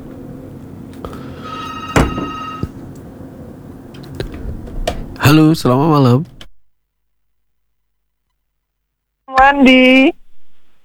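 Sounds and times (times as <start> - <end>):
hiss: 0.0 - 5.8
telephone ringing on an unanswered call: 1.1 - 2.9
speech: 5.3 - 6.4, 9.5 - 10.2.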